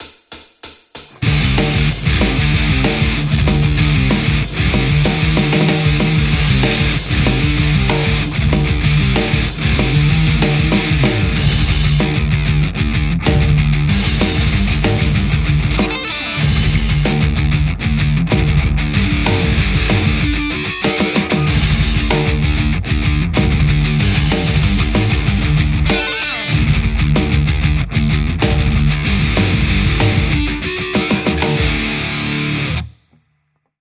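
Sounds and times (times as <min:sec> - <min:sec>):
metal Stratocaster electric guitar: 0:01.1 - 0:32.9.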